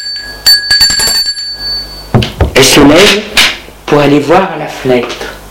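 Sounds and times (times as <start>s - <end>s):
electronic gate doorbell ringing: 0.0s - 2.2s
speech: 2.8s - 5.3s.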